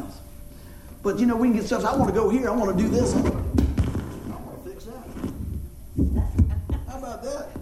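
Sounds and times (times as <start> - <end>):
speech: 1.0 - 3.5
low heartbeat thumps: 1.8 - 4.5, 5.2 - 7.5.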